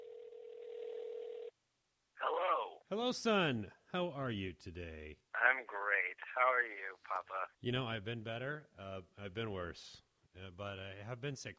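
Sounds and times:
electronic telephone ring tone through the line: 0.0 - 1.5
speech: 2.9 - 11.5.

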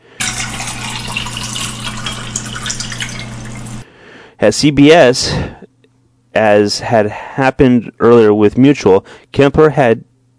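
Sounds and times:
room-temperature soda pop pouring into a glass: 0.2 - 3.8
speech: 4.4 - 5.6, 6.4 - 10.1.

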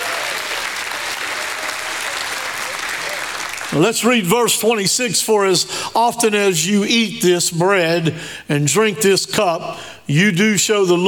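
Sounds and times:
audience clapping and cheering: 0.0 - 4.1
speech: 3.7 - 11.0.

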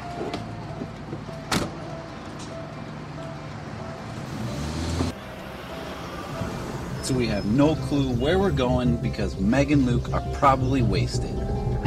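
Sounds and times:
car pulling away: 0.0 - 11.8
car door thudding shut: 1.5 - 1.8
speech: 7.1 - 11.5.

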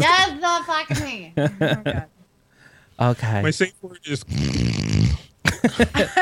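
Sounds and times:
speech: 0.8 - 2.2, 3.0 - 6.2
laughter: 0.9 - 2.1, 5.4 - 6.2
person imitating a snore: 4.2 - 5.3.

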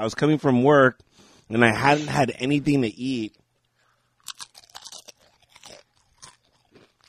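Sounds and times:
speech: 0.0 - 3.4
nacho chip being bitten and chewed: 4.2 - 7.0.

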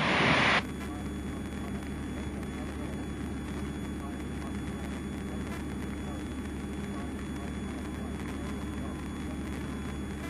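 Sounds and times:
loud hissing in Piper Cherokee cockpit: 0.0 - 0.6
Piper Cherokee engine drone inside cockpit in flight: 0.0 - 10.2.

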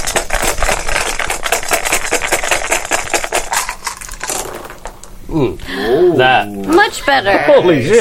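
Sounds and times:
handful of plastic dice rattling and clattering: 0.0 - 5.2
speech: 5.4 - 8.0.

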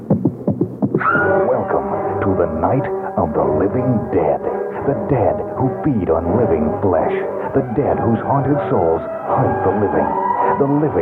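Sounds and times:
heartbeat of a terrified heart racing: 0.0 - 1.0
speech: 2.3 - 11.0.

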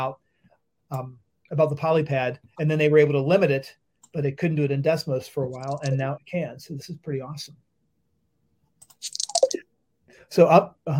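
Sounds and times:
speech: 0.0 - 0.2, 0.9 - 7.6, 9.0 - 9.2, 10.3 - 10.9
dice being shaken: 5.6 - 5.9, 9.0 - 9.6.

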